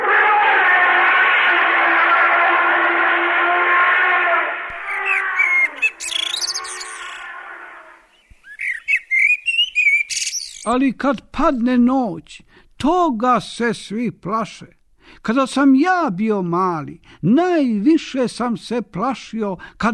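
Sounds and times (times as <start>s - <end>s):
elephant trumpeting: 0.0s - 8.1s
quick high bird twittering and chirps: 4.7s - 10.8s
speech: 10.7s - 19.9s.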